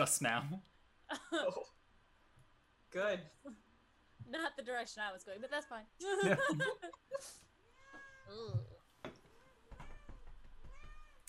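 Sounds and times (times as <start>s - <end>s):
speech: 0.0s - 1.8s, 2.9s - 3.6s, 4.2s - 7.5s, 8.2s - 9.2s
laughter: 6.0s - 7.4s
female cat meowing: 7.7s - 8.7s, 9.3s - 11.2s.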